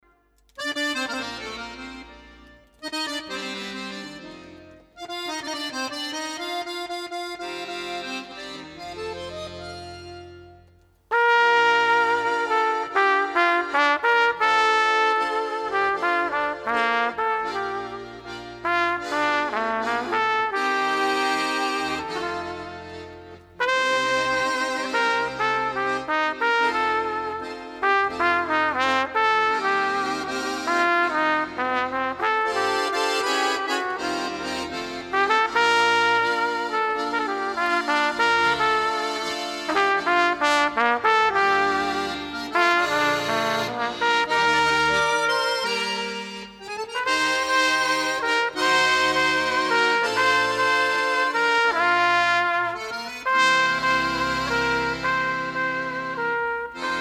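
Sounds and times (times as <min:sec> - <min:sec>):
accordion: 0:00.0 - 0:56.9
trumpet: 0:10.7 - 0:56.9.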